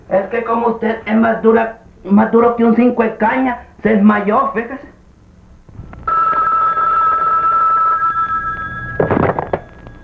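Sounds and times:
speech: 0.1s - 4.9s
telephone ringing in an office: 6.0s - 10.0s
clattering thump: 9.0s - 9.6s.

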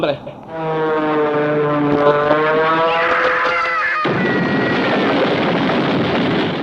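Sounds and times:
propeller airplane flying low overhead: 0.1s - 6.6s
steady rushing noise: 1.8s - 6.6s.

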